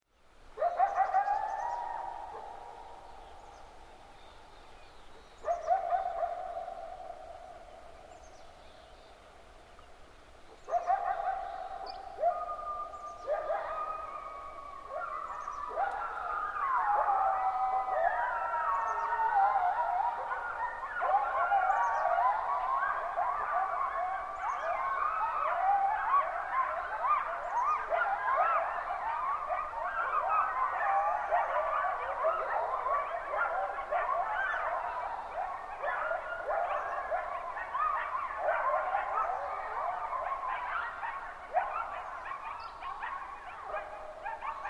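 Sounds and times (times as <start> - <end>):
coyote chorus: 0.4 - 44.6.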